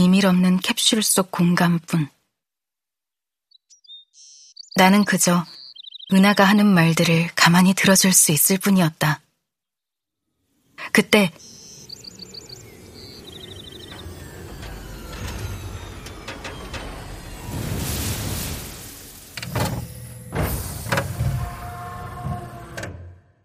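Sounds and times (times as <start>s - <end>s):
speech: 0.0s - 2.2s, 4.8s - 9.2s, 10.8s - 11.5s
birds chirping: 3.4s - 7.7s, 9.6s - 17.6s
low steady ambience: 10.4s - 21.4s
transport vehicle landing outside with a mechanical whir: 11.4s - 23.2s
transport vehicle door sliding and clunking open: 11.4s - 23.4s.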